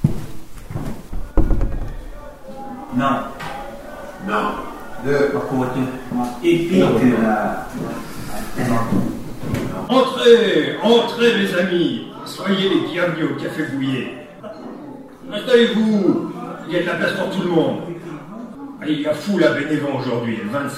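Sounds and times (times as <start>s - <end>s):
steady murmur of voices: 0.7s - 20.7s
door pushed open with a dull thunk: 1.1s - 2.2s
speech: 3.0s - 3.4s, 4.2s - 9.1s, 9.9s - 14.6s, 15.3s - 18.1s, 18.8s - 20.7s.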